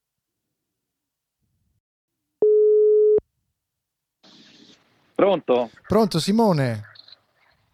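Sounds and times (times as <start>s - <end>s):
telephone line tones: 2.4s - 3.2s
speech: 5.2s - 6.9s.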